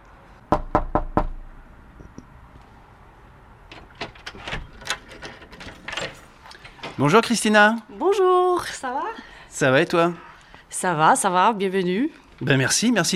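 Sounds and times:
sharp knocking on a door: 0.5s - 1.4s
speech: 7.0s - 13.1s.

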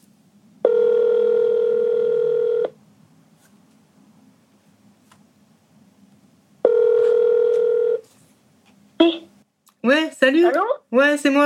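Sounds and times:
electronic phone ring tone on outgoing call: 0.6s - 2.8s, 6.6s - 8.0s
speech: 10.3s - 11.4s.

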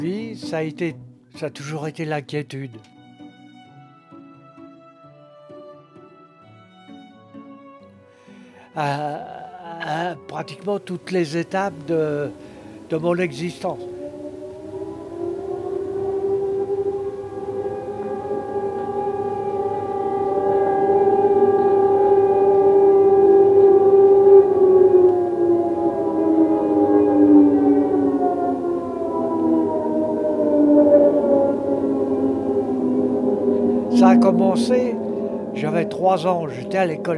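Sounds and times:
speech: 0.0s - 3.0s, 8.8s - 13.9s, 36.0s - 37.1s
air raid warning siren wailing: 8.8s - 37.1s.

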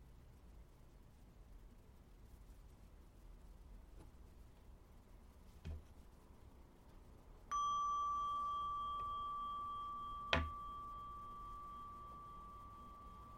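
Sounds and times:
faint tap: 5.6s - 5.9s
meditation bell struck and ringing: 7.5s - 13.3s.

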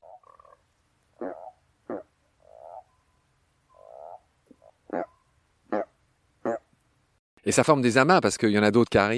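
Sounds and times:
toads calling during mating: 0.0s - 0.6s, 1.2s - 2.9s, 3.7s - 6.7s
speech: 7.4s - 9.1s.

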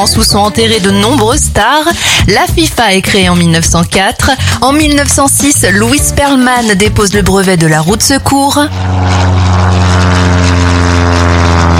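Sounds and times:
speech: 0.0s - 10.1s
propeller airplane engine droning: 0.0s - 11.7s.

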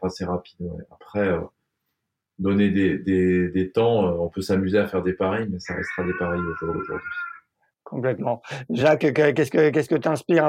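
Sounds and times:
speech: 0.0s - 1.6s, 2.4s - 7.3s, 7.9s - 10.4s
hungry cat meowing: 5.7s - 7.4s.

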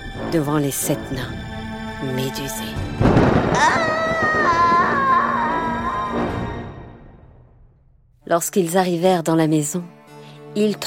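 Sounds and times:
speech: 0.3s - 4.7s, 8.3s - 10.0s, 10.6s - 10.8s
thunder clap rolling into a long rumble: 3.0s - 5.8s.

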